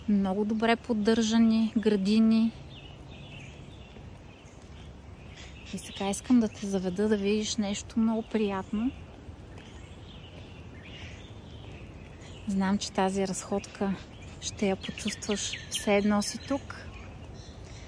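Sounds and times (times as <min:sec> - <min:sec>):
faint birdsong chirping outdoors: 0:00.0 - 0:17.8
speech: 0:00.1 - 0:02.6, 0:05.7 - 0:09.0, 0:12.5 - 0:16.9.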